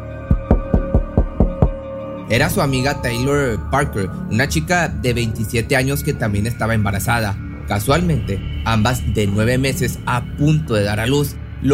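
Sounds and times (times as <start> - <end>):
sharp knocks on a door at a home: 0.3 - 1.8
speech: 2.3 - 11.7.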